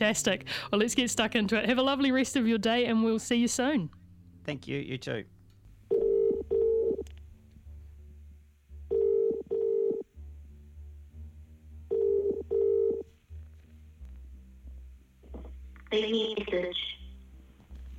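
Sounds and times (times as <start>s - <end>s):
speech: 0.0s - 5.4s
low hum: 3.9s - 17.9s
electronic telephone dialing tones: 5.9s - 7.0s, 8.9s - 10.1s, 11.9s - 13.1s.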